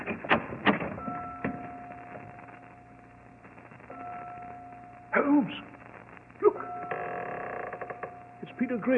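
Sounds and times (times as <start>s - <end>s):
heavy door into a bell tower creaking open: 0.0s - 1.6s, 6.9s - 8.2s
speech: 5.2s - 5.7s, 8.6s - 8.9s.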